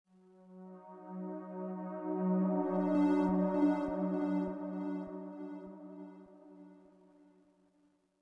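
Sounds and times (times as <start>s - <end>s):
synth pad: 0.5s - 7.1s.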